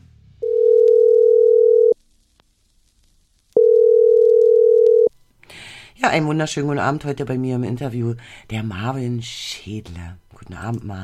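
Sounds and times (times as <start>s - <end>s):
telephone ringing tone while placing a call: 0.4s - 2.0s, 3.6s - 5.1s
speech: 6.0s - 11.0s.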